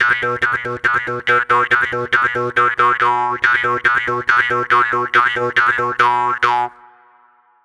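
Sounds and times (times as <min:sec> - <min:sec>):
jaw harp: 0:00.0 - 0:06.8.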